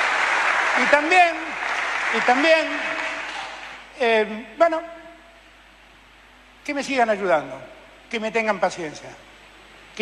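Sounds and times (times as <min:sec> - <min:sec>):
crowd applause: 0:00.0 - 0:03.8
speech: 0:00.8 - 0:01.5, 0:02.1 - 0:02.9, 0:04.0 - 0:05.0, 0:06.6 - 0:09.3.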